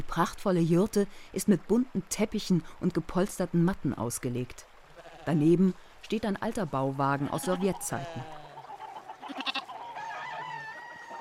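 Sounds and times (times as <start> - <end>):
speech: 0.1 - 8.4
sheep bleating at a herders' livestock camp beside a yurt: 5.0 - 5.6, 7.1 - 9.8
chickens clucking at a herders' livestock camp beside a yurt: 7.2 - 11.1.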